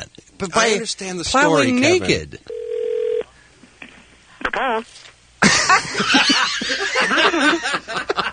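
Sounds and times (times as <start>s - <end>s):
speech: 0.0s - 2.5s, 4.6s - 5.1s, 5.7s - 8.0s
brief steady electronic phone tone as a call is placed: 2.5s - 3.3s
short burst of laughter: 5.4s - 8.3s.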